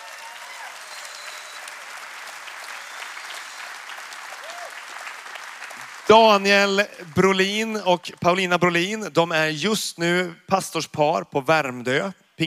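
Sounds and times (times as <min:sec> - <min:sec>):
audience applause: 0:00.0 - 0:07.8
speech: 0:06.1 - 0:12.4.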